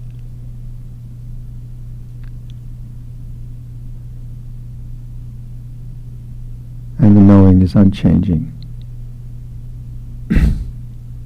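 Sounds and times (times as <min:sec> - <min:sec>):
steady low hum: 0:06.7 - 0:11.2
speech: 0:07.0 - 0:08.6
person coughing: 0:10.3 - 0:10.8.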